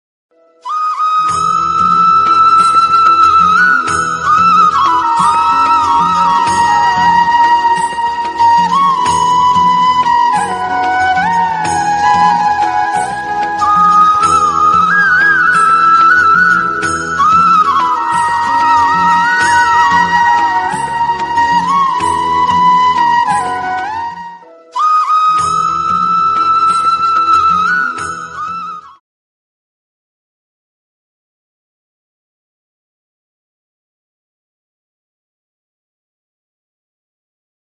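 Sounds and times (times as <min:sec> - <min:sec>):
instrumental flute ringtone: 0:00.3 - 0:29.0.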